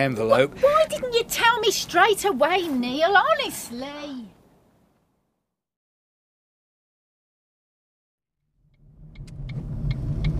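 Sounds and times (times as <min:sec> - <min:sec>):
speech: 0:00.0 - 0:04.4
car engine rumbling as the car drives up to park in town: 0:08.6 - 0:10.3.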